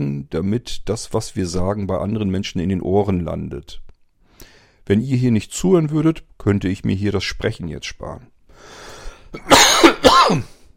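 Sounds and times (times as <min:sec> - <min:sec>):
speech: 0:00.0 - 0:03.8, 0:04.9 - 0:10.6
harsh throaty coughs: 0:09.3 - 0:10.7.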